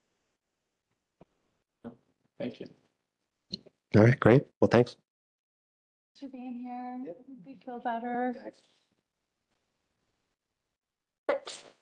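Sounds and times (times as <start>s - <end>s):
speech: 1.8s - 2.8s, 3.9s - 5.0s, 6.2s - 8.8s
person sneezing: 11.3s - 11.8s.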